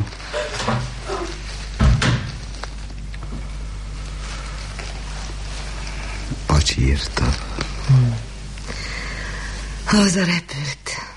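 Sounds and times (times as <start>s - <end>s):
room door swinging shut with a muffled thud: 1.8s - 2.4s
speech: 6.6s - 8.2s, 9.9s - 10.8s.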